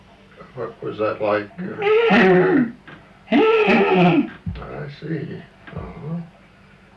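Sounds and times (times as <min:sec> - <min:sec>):
speech: 0:00.6 - 0:02.8, 0:03.7 - 0:06.4
person vocally imitating a horse's nicker: 0:01.6 - 0:04.4.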